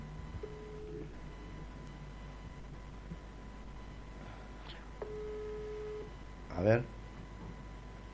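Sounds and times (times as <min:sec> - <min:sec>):
constant hiss: 0:00.0 - 0:08.1
ringback tone on an outgoing phone call: 0:00.4 - 0:01.1, 0:05.0 - 0:06.1
speech: 0:06.6 - 0:07.0.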